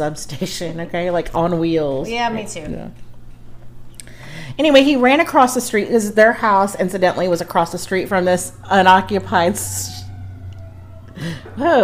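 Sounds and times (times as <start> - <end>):
speech: 0.0 - 3.1, 4.6 - 10.0, 11.2 - 11.8
low engine rumble: 7.5 - 11.8
emergency vehicle siren outside: 9.2 - 11.8.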